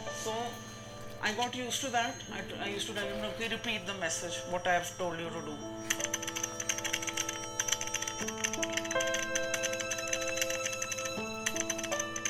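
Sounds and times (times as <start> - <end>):
speech: 0.2 - 6.0
typing on a computer keyboard: 5.8 - 12.2.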